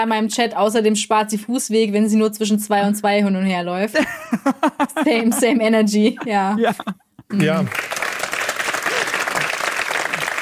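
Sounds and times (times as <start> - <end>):
speech: 0.0 - 8.0
laughter: 4.0 - 7.7
audience clapping: 7.3 - 10.3.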